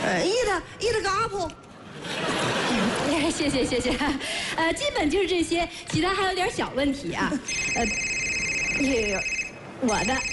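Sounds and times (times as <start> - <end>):
speech: 0.1 - 2.5, 3.1 - 8.1, 8.8 - 10.3
laughter: 1.7 - 4.3
telephone ringing: 7.4 - 10.3.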